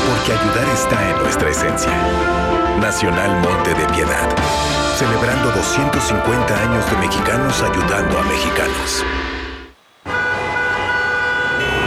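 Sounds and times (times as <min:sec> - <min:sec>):
speech: 0:00.3 - 0:09.4
blaring emergency siren: 0:08.2 - 0:11.8
loud city traffic: 0:09.0 - 0:11.8.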